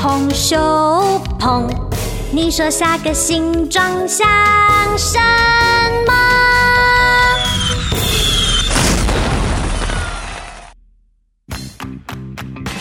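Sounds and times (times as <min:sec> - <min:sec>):
speech: 0:00.1 - 0:08.1
fireworks bursting in a night sky: 0:06.9 - 0:10.8.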